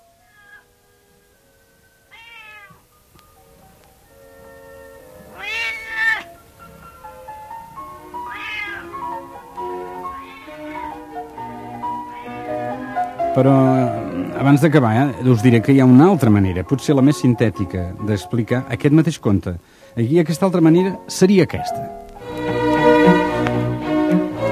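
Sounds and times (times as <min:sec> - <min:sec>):
soft sustained musical backing: 0:00.0 - 0:24.5
cat meowing drawn-out and plaintive: 0:00.2 - 0:00.7, 0:02.1 - 0:02.9, 0:05.3 - 0:06.4, 0:08.1 - 0:09.0, 0:09.8 - 0:13.2
speech: 0:13.4 - 0:22.0.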